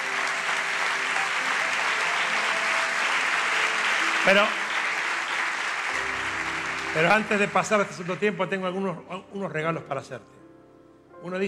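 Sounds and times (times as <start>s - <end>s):
large audience applauding during a religious sermon: 0.0s - 8.7s
speech: 4.2s - 4.6s, 6.9s - 10.4s, 11.2s - 11.4s.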